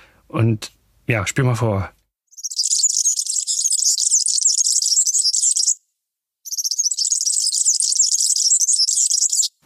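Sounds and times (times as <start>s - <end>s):
speech: 0.3s - 2.0s
European serin song: 2.3s - 5.8s, 6.4s - 9.6s.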